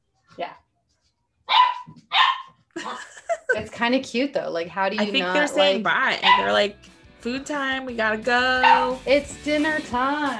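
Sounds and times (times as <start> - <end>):
sharp high-pitched puppy barks: 1.5 - 2.6, 6.2 - 6.6, 8.6 - 9.0
speech: 3.6 - 10.3.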